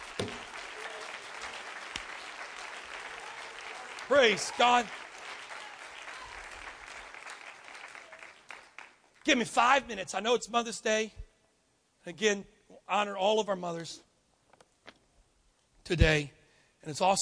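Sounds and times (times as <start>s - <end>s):
congregation clapping: 0.0s - 9.5s
speech: 4.1s - 5.0s, 9.2s - 11.2s, 12.0s - 14.1s, 15.9s - 17.2s.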